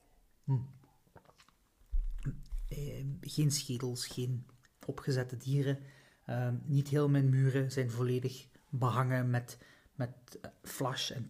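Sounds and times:
wet mouth sounds: 0:00.3 - 0:02.9
speech: 0:00.5 - 0:00.8, 0:03.0 - 0:11.2
person sipping a drink: 0:00.5 - 0:02.8
cup handled with low thumping rumble: 0:01.9 - 0:02.8.

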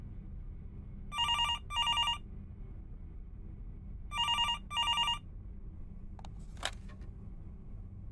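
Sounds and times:
low steady hum: 0:00.0 - 0:08.1
telephone ringing in double-burst trills: 0:01.2 - 0:02.2, 0:04.1 - 0:05.2.

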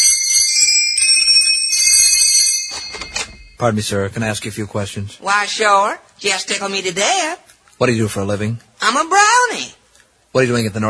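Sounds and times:
doorbell ringing at a workshop door: 0:00.0 - 0:03.7
speech: 0:03.6 - 0:10.8.

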